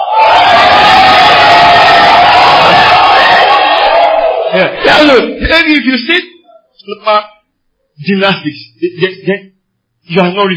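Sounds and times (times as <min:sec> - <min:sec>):
large crowd shouting and cheering: 0:00.0 - 0:05.5
speech: 0:04.6 - 0:07.3, 0:08.0 - 0:09.5, 0:10.1 - 0:10.5.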